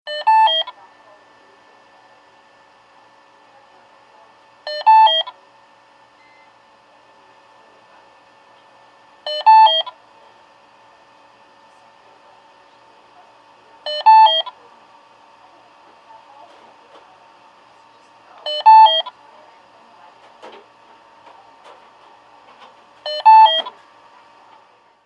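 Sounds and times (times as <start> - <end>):
ICU IV alarm in a hospital: 0.1 - 0.8, 4.7 - 5.4, 9.3 - 10.0, 13.9 - 14.6, 18.5 - 19.2, 23.0 - 23.7.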